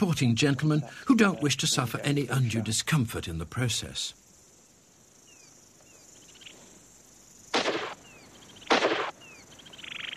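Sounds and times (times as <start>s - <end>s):
speech: 0.0s - 4.2s
faint bird chirps: 5.1s - 6.9s, 7.6s - 10.1s
gunshots from a hunting rifle on a game-ranch hunt: 7.5s - 8.0s, 8.7s - 9.2s.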